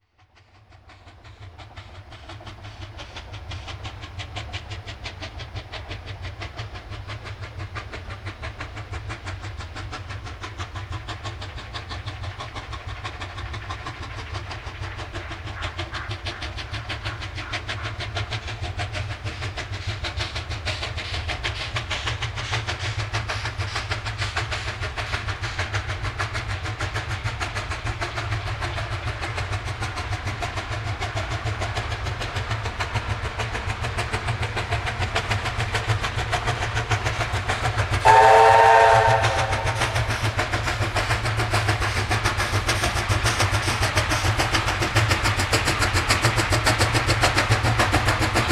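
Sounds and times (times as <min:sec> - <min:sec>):
steam locomotives: 0:00.0 - 0:48.5.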